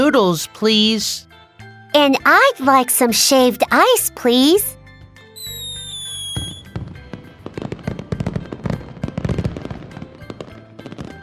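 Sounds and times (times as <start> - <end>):
speech: 0.1 - 1.3, 1.9 - 4.8
fireworks display pops and bangs: 5.4 - 11.2.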